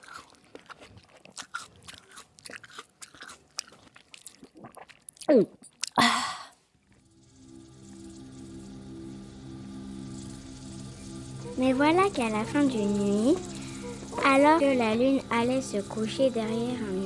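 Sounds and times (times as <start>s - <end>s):
crunchy munching of a cabbage from a field down to the core: 0.0s - 6.0s
speech: 5.3s - 5.6s, 11.8s - 13.5s, 14.3s - 17.0s
steady low droning hum: 6.9s - 17.0s.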